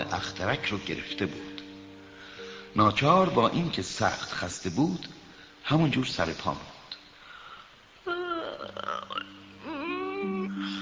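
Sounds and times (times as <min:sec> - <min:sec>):
speech: 0:00.0 - 0:01.6, 0:02.8 - 0:06.7
person yawning: 0:08.0 - 0:10.8.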